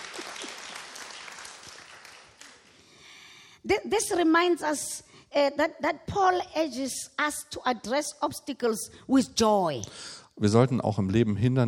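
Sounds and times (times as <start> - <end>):
audience clapping: 0.0 - 2.9
speech: 3.6 - 11.6.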